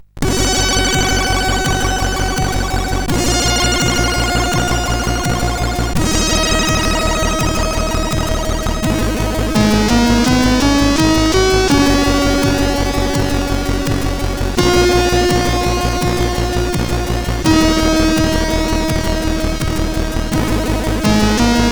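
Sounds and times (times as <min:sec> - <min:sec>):
chiptune samba music on a SID sound chip: 0:00.2 - 0:21.6.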